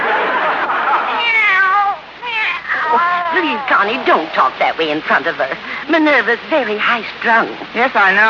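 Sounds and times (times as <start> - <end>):
laughter: 0.0 - 1.4
kitten meowing: 1.2 - 4.0
speech: 3.7 - 8.2.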